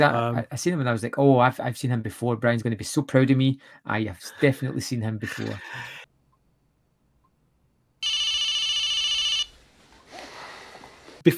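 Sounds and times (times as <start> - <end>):
speech: 0.0 - 6.0
mobile phone ringing with bright electronic warbling tone: 8.0 - 9.6.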